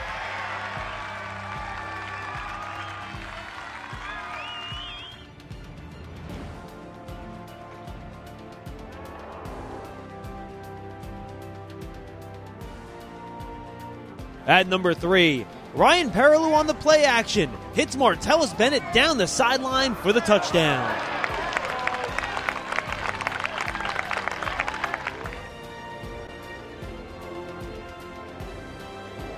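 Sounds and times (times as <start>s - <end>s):
scattered murmur of applause: 0.0s - 5.3s, 20.4s - 25.6s
crowd cheering loudly with whoops and high shouts: 0.0s - 5.4s, 17.8s - 25.5s
speech: 14.5s - 21.1s.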